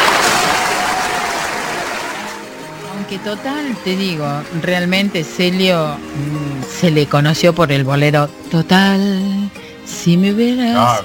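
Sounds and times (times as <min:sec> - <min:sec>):
live audience applause at a bolero music event: 0:00.0 - 0:07.2
speech: 0:03.1 - 0:11.0.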